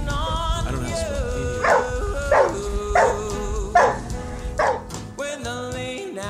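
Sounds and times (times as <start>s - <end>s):
Catahoula dog baying: 0.1s - 5.0s.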